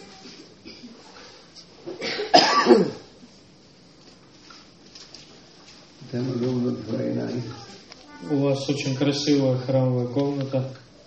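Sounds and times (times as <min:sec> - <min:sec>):
harsh hacking cough: 0:01.9 - 0:03.1
speech: 0:06.1 - 0:07.6, 0:08.2 - 0:10.8.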